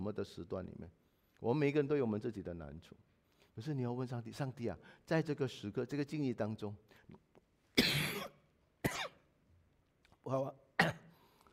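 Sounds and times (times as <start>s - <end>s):
speech: 0.0s - 7.2s, 10.2s - 11.0s
person with a cough coughing: 7.8s - 9.2s, 10.8s - 11.2s.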